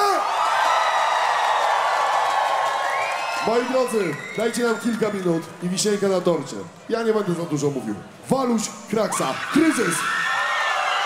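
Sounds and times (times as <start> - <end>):
crowd cheering at a live concert by a small stage: 0.0 - 6.4, 9.1 - 11.0
speech: 3.4 - 10.2.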